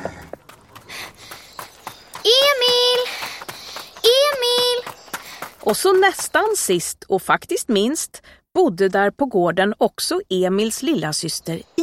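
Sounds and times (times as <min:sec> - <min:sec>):
horse hooves clip-clopping: 0:00.0 - 0:06.9
speech: 0:05.7 - 0:11.8.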